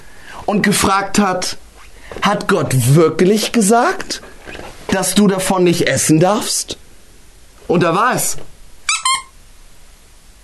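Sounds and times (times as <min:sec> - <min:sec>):
speech: 0:00.5 - 0:06.8, 0:07.7 - 0:08.5
high-pitched squeaks: 0:08.9 - 0:09.4.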